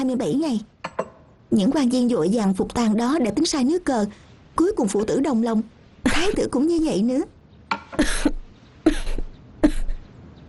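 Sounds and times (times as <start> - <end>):
speech: 0.0 - 0.8, 1.5 - 7.4
person coughing: 7.9 - 10.4
throat clearing: 8.0 - 10.4.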